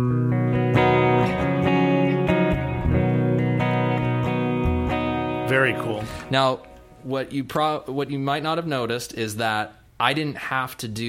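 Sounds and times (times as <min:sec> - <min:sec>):
electric guitar playing sustained ringing chords through a subtle reverb preset: 0:00.0 - 0:07.0
speech: 0:05.8 - 0:11.0.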